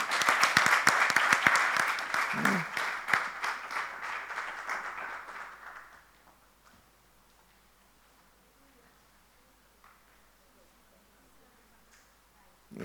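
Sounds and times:
audience applause at a testimonials gathering: 0:00.0 - 0:06.4.

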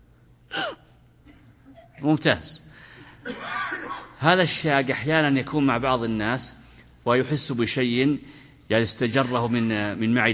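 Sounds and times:
person imitating a hiccup with a sharp gasp-like intake of breath: 0:00.5 - 0:00.9
speech: 0:02.0 - 0:02.6, 0:04.2 - 0:10.3.

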